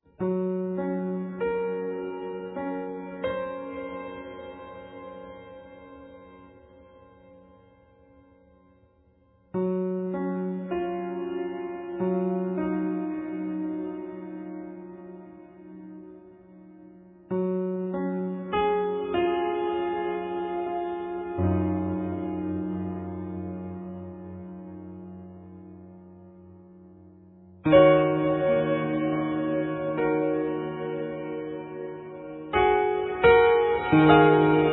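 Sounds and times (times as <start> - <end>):
piano melody: 0.0 - 8.2, 9.5 - 34.7.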